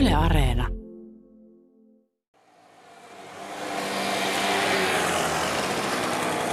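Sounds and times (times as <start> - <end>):
speech: 0.2 - 0.8
convoy of mopeds driving on the old King's Road in southeast Finland: 2.5 - 6.5.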